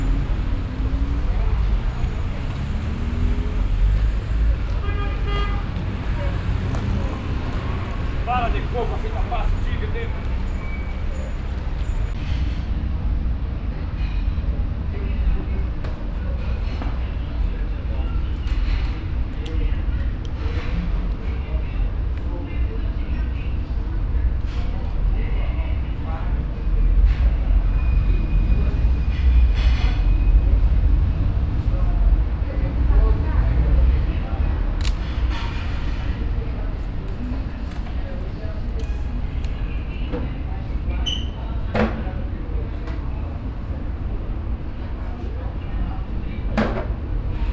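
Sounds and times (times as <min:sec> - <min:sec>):
street ambience in Brazil: 0:00.0 - 0:47.5.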